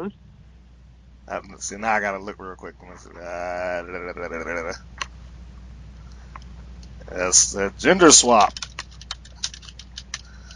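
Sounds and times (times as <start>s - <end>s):
speech: 0.0s - 0.2s, 1.3s - 5.1s, 7.1s - 8.7s
steady low hum: 0.0s - 10.5s
typing on a computer keyboard: 8.1s - 10.5s.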